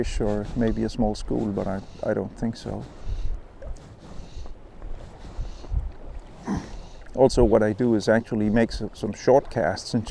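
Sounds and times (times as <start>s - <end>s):
speech: 0.0s - 3.0s, 6.5s - 10.1s
faint watery background: 0.0s - 10.1s
gusty wind buffeting the microphone outdoors while fishing from a point: 0.0s - 10.1s.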